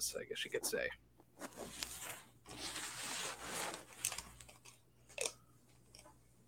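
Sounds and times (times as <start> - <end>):
speech: 0.0 - 1.9
rustling and shuffling against a microphone: 0.6 - 4.5.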